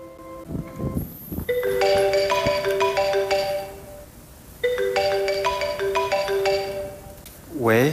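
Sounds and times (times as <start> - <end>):
telephone ringing with a bright electronic melody: 0.0 - 7.2.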